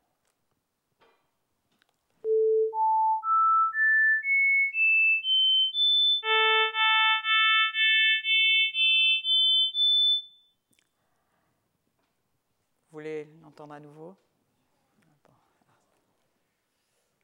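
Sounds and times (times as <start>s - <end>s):
pure single-frequency beep tones: 2.3s - 10.5s.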